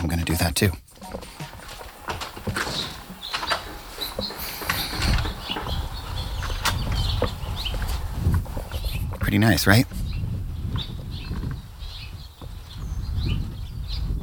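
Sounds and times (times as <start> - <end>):
birds chirping and twittering outdoors: 0.0 - 14.2
speech: 0.1 - 1.3, 9.3 - 10.0
clattering knocks: 0.9 - 10.0.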